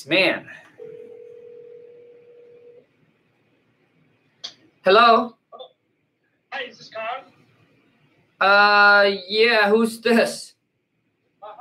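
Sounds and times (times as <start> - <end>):
speech: 0.0 - 1.0, 4.8 - 5.4, 6.6 - 7.4, 8.4 - 10.5
faint noise: 0.0 - 11.5
steady telephone dialing tone: 0.8 - 2.8.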